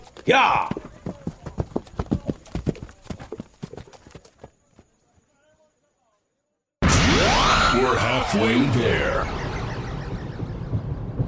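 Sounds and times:
hooves of ridden horses clip-clopping: 0.0 - 5.7
speech: 0.2 - 0.8, 7.9 - 9.5
sudden loud burst of noise: 6.8 - 11.2.

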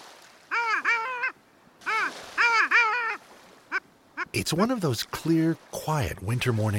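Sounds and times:
long-tailed ducks calling on a bay on a winter morning: 0.5 - 4.4
speech: 4.4 - 6.7.

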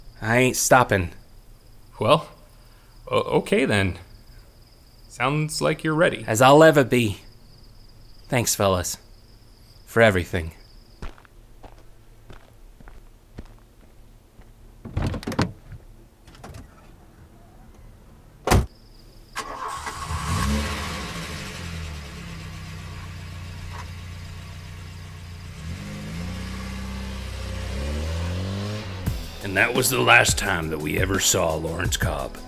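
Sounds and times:
speech: 0.2 - 1.2, 2.0 - 2.4, 3.1 - 4.1, 5.2 - 7.2, 8.3 - 9.0, 9.9 - 10.6, 29.8 - 32.4
footsteps: 11.0 - 15.9
thuds: 14.8 - 16.9, 18.4 - 18.7
car door slam: 14.8 - 17.0, 18.4 - 18.7
car engine starting and revving as the car drives away: 19.4 - 32.4.

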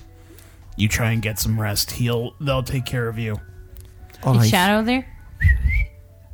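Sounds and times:
speech: 0.8 - 3.5, 4.2 - 5.7
person whistling to call a dog: 5.4 - 6.0.

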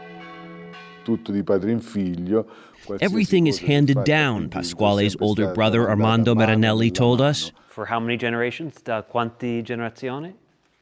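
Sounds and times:
large church bell ringing in its tower: 0.0 - 2.3
speech: 1.0 - 10.4.

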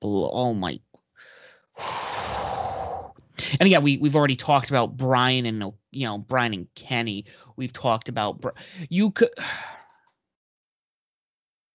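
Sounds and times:
speech: 0.0 - 0.9, 1.8 - 2.0, 3.5 - 9.7
heavy breathing into the microphone: 1.2 - 3.6, 7.2 - 7.6, 8.6 - 10.0.

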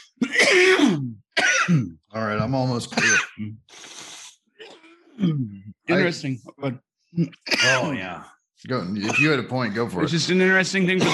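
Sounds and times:
harsh raspy cough after a bong hit: 0.0 - 2.1, 2.9 - 3.7, 7.2 - 8.0, 9.0 - 9.6, 10.9 - 11.1
speech: 1.7 - 4.0, 5.2 - 11.1.

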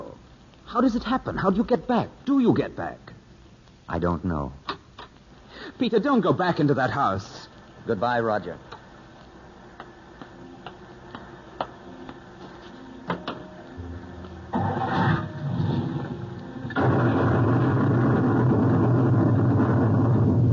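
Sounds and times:
speech: 0.7 - 3.1, 3.9 - 4.6, 5.7 - 8.7
heavy thunder rumbling: 14.5 - 20.5
sharp cracks of a lightning strike: 14.5 - 20.5.

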